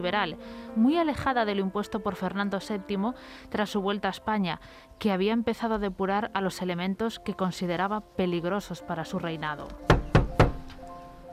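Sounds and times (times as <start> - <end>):
speech: 0.0 - 10.0
knocking on the door of a home: 9.9 - 10.8.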